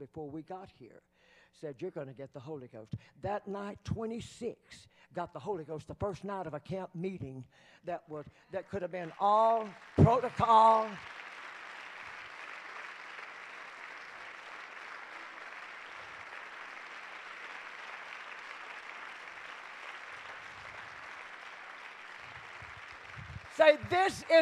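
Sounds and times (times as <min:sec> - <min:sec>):
speech: 0:00.0 - 0:11.3, 0:23.9 - 0:24.4
large crowd applauding in a reverberant hall: 0:08.8 - 0:24.4.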